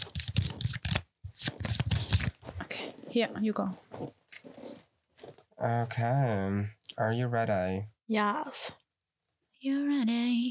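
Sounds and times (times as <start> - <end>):
playing cards being shuffled: 0.0 - 2.7
speech: 3.1 - 4.6, 5.6 - 8.8, 9.6 - 10.4.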